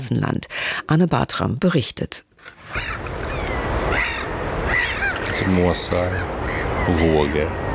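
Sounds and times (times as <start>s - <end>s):
wind: 0.0s - 7.7s
speech: 0.1s - 3.1s, 5.4s - 7.6s
gulls calling: 2.6s - 7.7s
rushing surf on a coast in Sweden: 2.6s - 7.7s.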